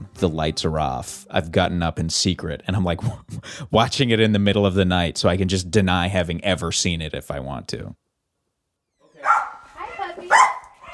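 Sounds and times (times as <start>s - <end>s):
speech: 0.2s - 8.0s
dog whining: 9.0s - 10.9s
dog barking: 9.2s - 10.9s.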